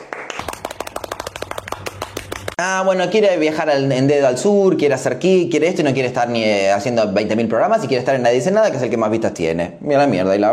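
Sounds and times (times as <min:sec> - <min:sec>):
applause: 0:00.0 - 0:02.6
speech: 0:02.6 - 0:10.5.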